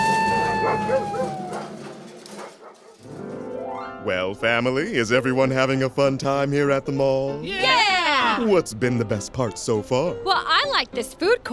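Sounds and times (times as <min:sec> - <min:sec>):
golden retriever whining: 0:00.0 - 0:02.9
golden retrievers getting off leash barking: 0:00.3 - 0:03.1
speech: 0:04.0 - 0:07.8, 0:08.4 - 0:11.5.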